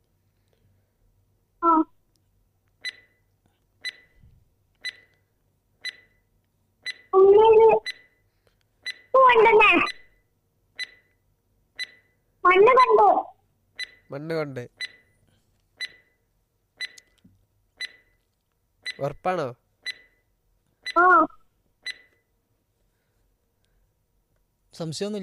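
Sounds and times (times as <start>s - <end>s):
quiz timer beeping after being started: 2.8s - 3.2s, 3.8s - 4.2s, 4.8s - 5.1s, 5.8s - 8.2s, 8.8s - 10.2s, 10.8s - 11.2s, 11.8s - 13.0s, 13.8s - 14.1s, 14.8s - 15.2s, 15.8s - 16.2s, 16.8s - 17.0s, 17.8s - 18.2s, 18.8s - 19.2s, 19.8s - 20.2s, 20.8s - 22.2s
speech: 14.2s - 14.8s, 19.0s - 19.6s, 24.8s - 25.2s.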